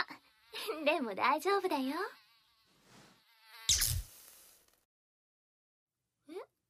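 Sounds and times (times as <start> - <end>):
housefly buzzing: 0.0 - 4.7
speech: 0.8 - 2.2
short rising chirp: 3.7 - 4.2.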